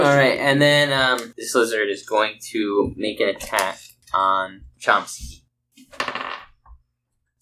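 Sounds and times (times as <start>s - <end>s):
speech: 0.0s - 6.2s
dice clattering across a hard tabletop in a tabletop role-playing game: 5.9s - 6.6s.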